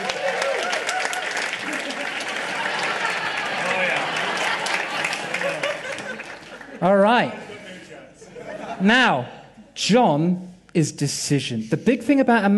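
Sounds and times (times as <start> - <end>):
crowd applauding: 0.0 - 7.4
laughter: 1.4 - 9.4
speech: 6.8 - 7.4, 8.8 - 12.5.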